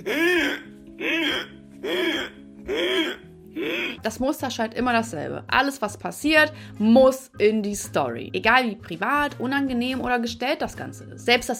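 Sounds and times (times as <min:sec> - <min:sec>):
man gasping and rasping after choking: 0:00.0 - 0:04.0
speech: 0:04.1 - 0:11.5.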